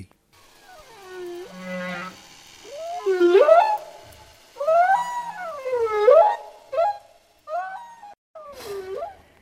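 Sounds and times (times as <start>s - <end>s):
whale song with sliding moans and swooping calls: 0.7s - 9.2s.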